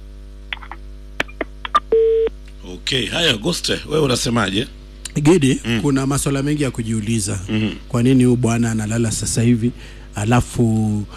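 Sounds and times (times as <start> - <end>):
steady telephone tone: 1.9 - 2.3
speech: 2.8 - 11.1.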